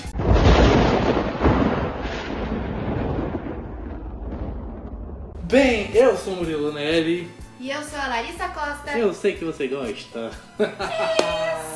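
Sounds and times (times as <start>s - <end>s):
loud rumbling thunder effect: 0.2s - 5.9s
speech: 5.5s - 11.6s
laughter: 10.3s - 11.7s.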